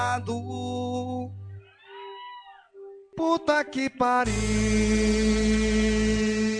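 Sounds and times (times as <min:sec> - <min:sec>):
speech: 0:00.0 - 0:01.4, 0:03.2 - 0:06.4
cat meowing: 0:01.7 - 0:02.7.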